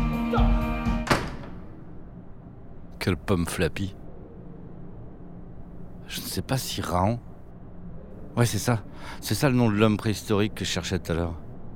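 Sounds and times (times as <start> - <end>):
steady low hum: 0.3 - 11.7
door shutting with a solid thud: 1.0 - 1.8
speech: 3.0 - 4.0, 6.1 - 7.3, 8.4 - 11.4.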